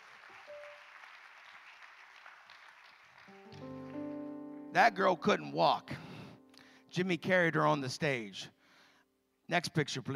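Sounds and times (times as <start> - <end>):
crowd applauding: 0.0 - 4.3
organ or keyboard chord: 3.3 - 7.9
speech: 4.8 - 6.0, 6.9 - 8.6, 9.5 - 10.1.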